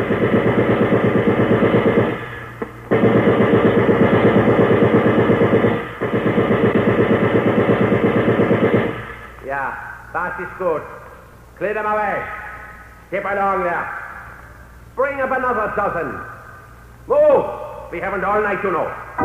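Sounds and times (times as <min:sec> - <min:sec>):
firing-squad gunfire during an execution: 0:00.0 - 0:09.3
speech: 0:10.4 - 0:11.0, 0:11.6 - 0:12.4, 0:13.1 - 0:14.0, 0:15.0 - 0:16.4, 0:17.1 - 0:19.2.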